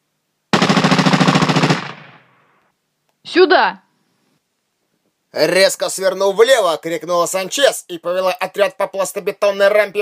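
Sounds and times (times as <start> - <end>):
automatic gunfire at a street barricade during a science-fiction battle: 0.5 - 2.4
speech: 3.3 - 3.8, 5.3 - 10.0.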